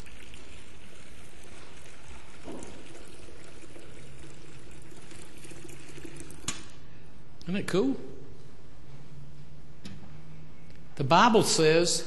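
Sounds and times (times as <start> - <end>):
water pouring into a little plastic bowl used for baptisms: 0.0 - 6.7
speech: 7.5 - 8.1, 11.0 - 12.0.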